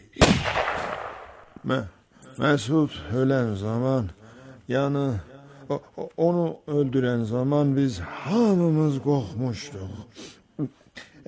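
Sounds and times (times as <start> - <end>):
gunshot: 0.2 - 1.6
speech: 1.6 - 11.2.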